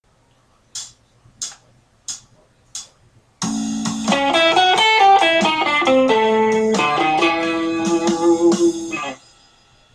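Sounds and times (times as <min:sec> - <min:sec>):
blues turnaround lick on guitar: 0:03.4 - 0:09.2.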